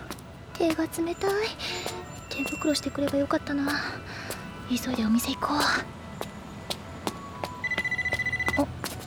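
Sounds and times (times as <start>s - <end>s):
speech: 0.6s - 6.0s
phone ringing with a pulsing electronic trill: 7.6s - 8.8s.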